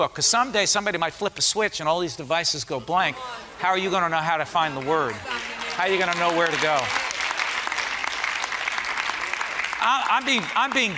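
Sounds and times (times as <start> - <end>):
speech: 0.0 - 7.0, 9.9 - 10.9
audience applause: 4.5 - 10.9.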